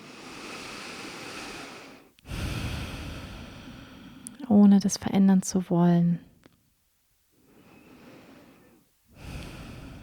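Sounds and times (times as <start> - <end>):
deep breathing in and out: 0.0 - 4.4, 7.4 - 10.0
speech: 4.5 - 6.3.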